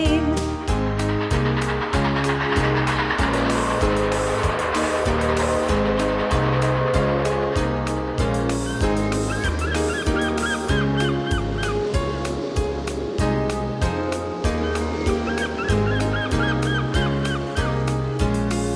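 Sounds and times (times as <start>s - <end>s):
low rumble of surf: 0.2s - 18.7s
seagulls calling by the ocean: 8.6s - 12.4s, 14.4s - 17.7s.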